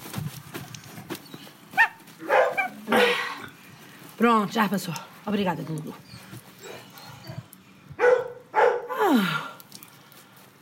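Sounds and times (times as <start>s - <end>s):
shuffling noises: 0.0s - 7.6s
dog barking: 1.8s - 2.8s, 8.0s - 8.9s
speech: 4.2s - 6.2s.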